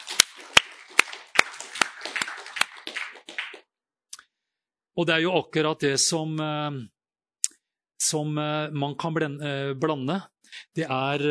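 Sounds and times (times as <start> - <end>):
small audience applauding: 0.0 - 3.6
speech: 5.0 - 7.0, 8.0 - 11.2.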